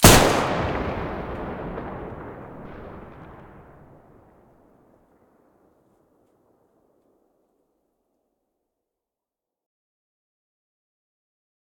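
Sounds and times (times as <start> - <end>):
TOZ-34 shotgun firing: 0.0 - 4.2.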